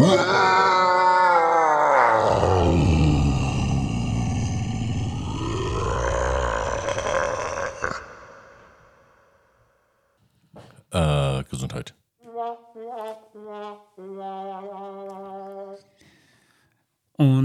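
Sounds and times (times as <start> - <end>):
man roaring in anguish: 0.0 - 9.0.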